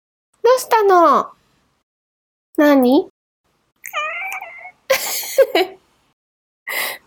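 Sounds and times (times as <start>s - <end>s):
speech: 0.6s - 1.4s, 2.6s - 3.1s, 5.5s - 5.8s
cat meowing: 3.9s - 4.9s
laughter: 4.9s - 5.7s.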